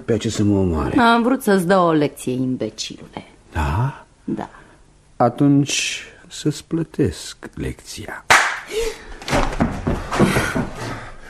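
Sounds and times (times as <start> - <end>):
speech: 0.0 - 4.6, 5.2 - 9.0
slap: 8.3 - 8.7
thumping impacts: 9.2 - 11.0.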